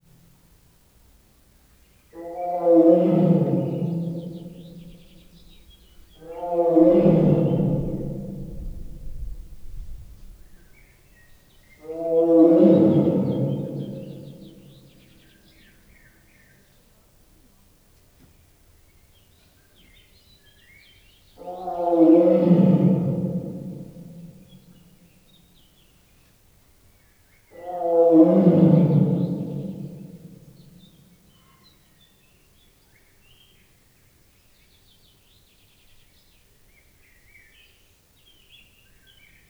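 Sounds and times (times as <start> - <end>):
distant animal roaring in a tiger house: 2.2 - 10.6, 11.8 - 14.6, 21.4 - 24.2, 27.6 - 30.3.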